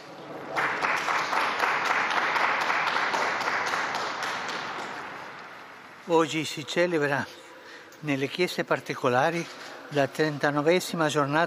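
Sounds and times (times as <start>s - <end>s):
large crowd applause: 0.4s - 5.4s
speech: 6.1s - 7.4s, 8.0s - 11.4s.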